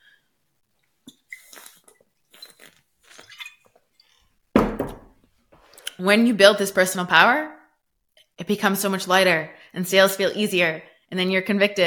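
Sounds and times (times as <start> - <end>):
person sipping and swallowing water: 0.8 - 4.4
speech: 6.0 - 7.6, 8.5 - 11.8.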